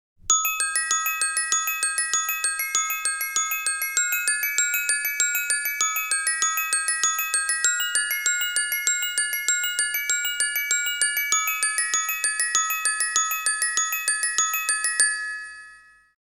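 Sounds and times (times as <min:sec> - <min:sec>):
bells ringing: 0:00.3 - 0:16.2.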